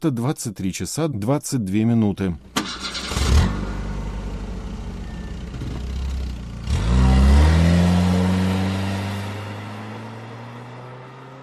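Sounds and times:
speech: 0.0s - 3.7s
car engine idling and revving as the car pulls away: 2.4s - 11.4s.

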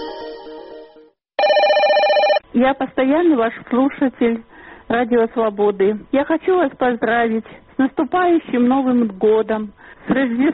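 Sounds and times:
telephone ringing with a trilling electronic tone: 1.4s - 2.4s
speech: 2.7s - 10.5s.

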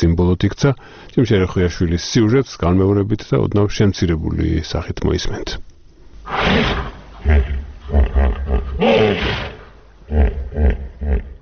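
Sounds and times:
speech: 0.0s - 5.7s, 6.3s - 9.5s, 10.1s - 11.3s
16-year-old hippopotamus roaring grunts in a zoo's elephant enclosure: 6.3s - 11.4s.

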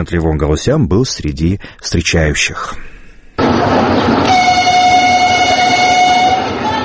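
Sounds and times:
speech: 0.0s - 4.3s
passenger train horn blaring at Sukhumi railway station in Abkhazia: 3.4s - 6.8s.

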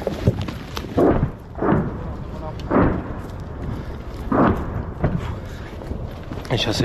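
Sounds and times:
noise: 0.0s - 6.8s
Grad multiple rocket launcher barrage rocket explosions near Novomykhailivka Ukraine: 0.9s - 6.1s
speech: 6.5s - 6.8s.

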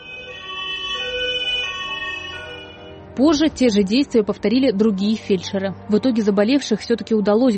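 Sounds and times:
ambulance siren wailing: 0.0s - 3.7s
speech: 3.2s - 7.5s.

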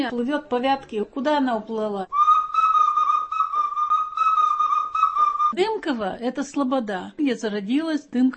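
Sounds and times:
speech: 0.0s - 2.3s, 5.6s - 8.3s
shrill festive whistle blowing: 2.1s - 5.6s.

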